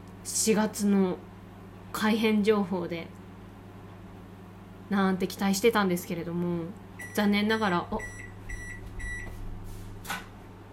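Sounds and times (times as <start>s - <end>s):
microwave oven steady low hum while heating: 0.0s - 10.7s
speech: 0.3s - 1.3s, 2.0s - 3.2s, 4.9s - 8.2s
microwave oven beeping as it finishes heating: 7.0s - 9.6s.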